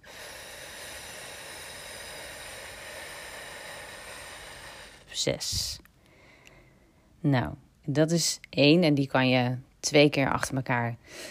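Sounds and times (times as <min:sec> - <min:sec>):
long slow exhale during breathing exercise: 0:00.0 - 0:05.2, 0:06.0 - 0:07.0
speech: 0:05.2 - 0:05.9, 0:07.2 - 0:11.2.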